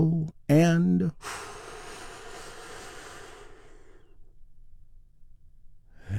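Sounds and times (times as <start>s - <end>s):
speech: 0.0s - 1.4s
deep breath in and out during a guided relaxation exercise: 1.1s - 4.5s, 5.9s - 6.1s.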